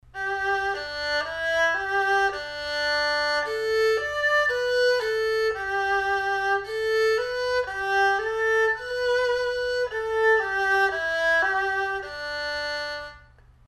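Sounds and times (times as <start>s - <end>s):
erhu: 0.0s - 13.5s.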